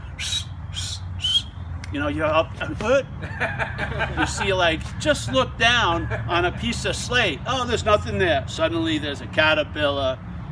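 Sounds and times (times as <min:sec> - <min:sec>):
bird giving bright whistling calls: 0:00.0 - 0:01.7
speech: 0:01.9 - 0:10.3
laughter: 0:03.2 - 0:06.9.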